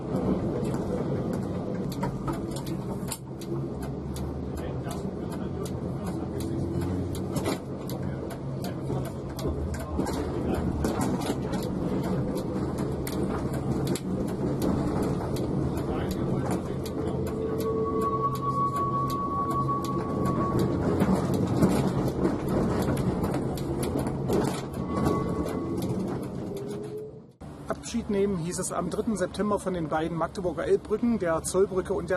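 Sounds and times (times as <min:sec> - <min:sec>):
two trams rumbling through setting-in rain returning to the Burgau depot: 0:00.0 - 0:32.1
tram metallic wheel squeal: 0:15.0 - 0:27.3
speech: 0:28.5 - 0:32.1.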